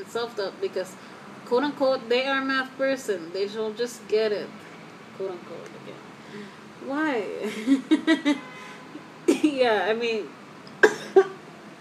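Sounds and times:
speech: 0.1 - 4.6, 5.2 - 8.5, 9.3 - 10.4
person coughing: 10.8 - 11.4.

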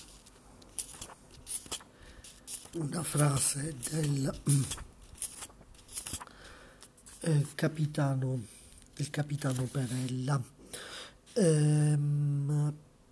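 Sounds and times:
pages being turned: 0.0 - 8.1, 8.7 - 10.4
speech: 2.8 - 4.9, 7.3 - 10.6, 11.4 - 12.9.

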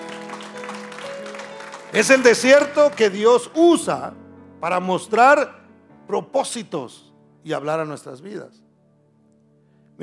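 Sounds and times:
church audience applauding: 0.0 - 3.6
speech: 1.9 - 8.6.

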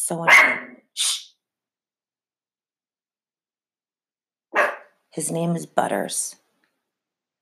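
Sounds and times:
speech: 0.1 - 1.1, 5.2 - 6.4
Pomeranian barking at passing car: 0.3 - 0.8, 4.6 - 4.9.

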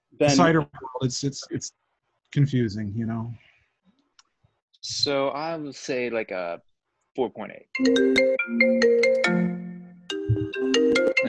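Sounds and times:
speech: 0.2 - 3.5, 4.8 - 9.5, 10.6 - 11.2
cell phone ringtone with melodic electronic tune: 7.8 - 11.2.

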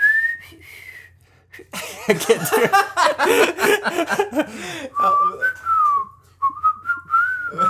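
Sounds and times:
person whistling a song's intro melody: 0.0 - 1.2, 4.9 - 7.6
speech: 1.6 - 5.6
person laughing: 1.7 - 4.9.

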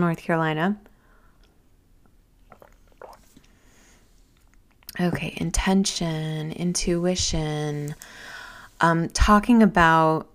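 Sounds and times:
speech: 0.0 - 0.9, 5.0 - 10.3
sipping hot throat coat tea in Asheville North Carolina: 2.4 - 3.6.

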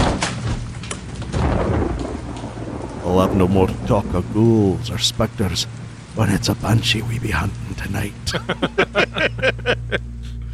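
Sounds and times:
steady hiss: 0.6 - 10.5
thunder crash with sharp cracks: 1.3 - 5.2
speech: 3.1 - 10.1
laughter: 8.3 - 10.2.

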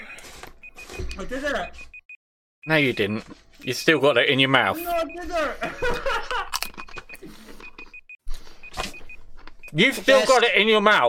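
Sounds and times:
kitchen timer beeping: 0.6 - 10.4
speech: 1.2 - 1.9, 2.6 - 6.6, 9.7 - 11.0
people laughing: 4.9 - 6.7.

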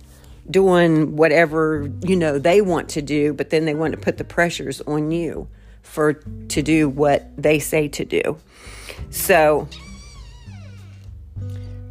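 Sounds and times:
speech: 0.5 - 9.9
pet house cat meowing, drawn-out and sliding downward in pitch: 9.7 - 11.1.

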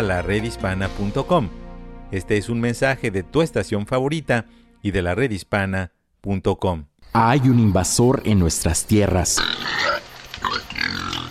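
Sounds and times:
speech: 0.0 - 9.8
wild pigs grunting and squealing: 9.3 - 11.2.

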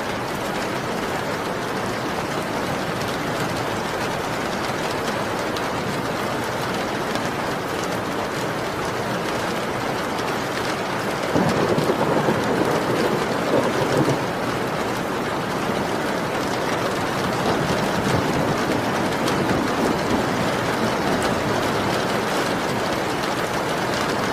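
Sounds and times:
dense rain pattering against windows: 0.0 - 24.3
low rumble of thunder: 11.3 - 14.8, 17.4 - 21.9.

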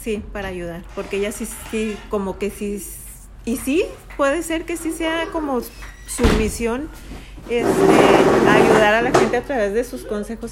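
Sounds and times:
speech: 0.0 - 10.4
chair being dragged across floor: 0.8 - 2.2, 7.0 - 9.4.

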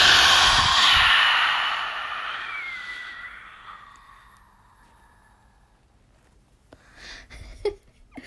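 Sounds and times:
person forcefully exhaling with the mouth open wide: 0.0 - 4.4.

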